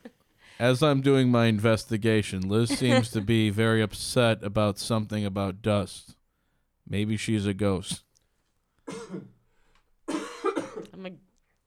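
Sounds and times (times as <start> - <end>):
speech: 0.6 - 6.2, 6.9 - 8.1, 9.1 - 9.3
person coughing harshly: 8.9 - 9.4, 10.1 - 11.0.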